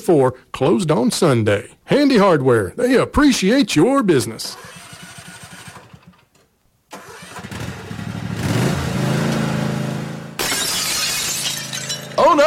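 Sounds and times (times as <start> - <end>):
speech: 0.0 - 4.8
small lawnmower engine starting: 4.4 - 10.0
car side-window glass breaking: 10.4 - 12.4.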